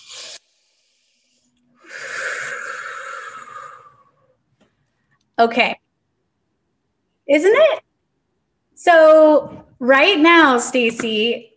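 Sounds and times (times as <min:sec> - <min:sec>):
deep breath in: 0:00.0 - 0:04.4
speech: 0:05.4 - 0:05.8, 0:07.3 - 0:07.8, 0:08.8 - 0:11.5.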